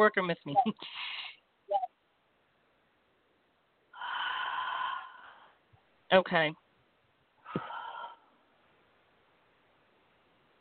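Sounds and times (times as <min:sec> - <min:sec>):
speech: 0:00.0 - 0:01.8, 0:06.1 - 0:06.6
person deep breathing to relax: 0:04.0 - 0:05.7, 0:07.4 - 0:08.4.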